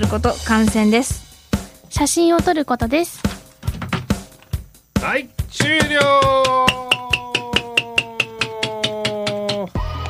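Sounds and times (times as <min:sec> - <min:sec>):
speech: 0:00.0 - 0:01.2, 0:01.9 - 0:03.3, 0:05.0 - 0:06.6
squeaky plastic toy hammer tapping without squeaking: 0:05.6 - 0:09.8.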